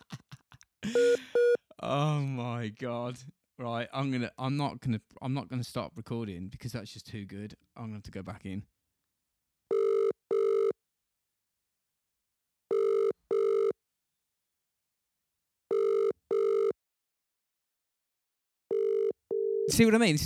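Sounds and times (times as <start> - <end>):
speech: 0.9 - 8.8, 19.8 - 20.2
double-pulse ringback tone of an outgoing phone call: 9.7 - 10.8, 12.7 - 13.8, 15.7 - 16.7, 18.7 - 19.7.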